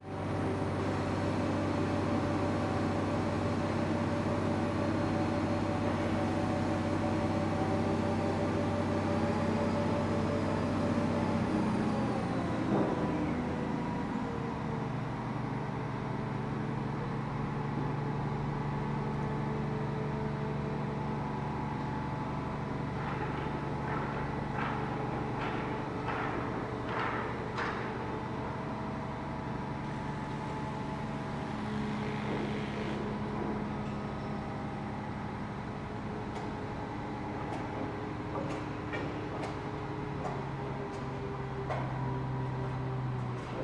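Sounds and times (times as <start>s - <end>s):
construction crane engine hoisting at various engine speeds: 0.0s - 43.6s.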